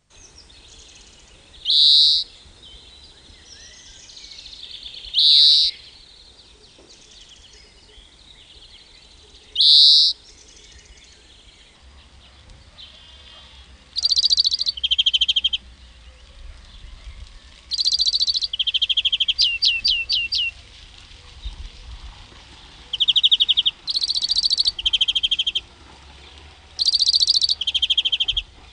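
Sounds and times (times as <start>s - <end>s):
greenfinch: 1.6s - 2.8s, 3.6s - 6.0s, 9.5s - 10.6s, 12.0s - 15.6s, 17.7s - 20.6s, 22.9s - 25.7s, 26.8s - 28.7s.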